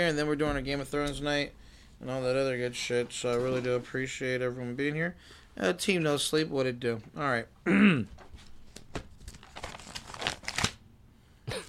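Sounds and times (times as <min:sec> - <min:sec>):
speech: 0:00.0 - 0:08.2
sheet of paper being read from rustling and crinkling: 0:08.2 - 0:10.8.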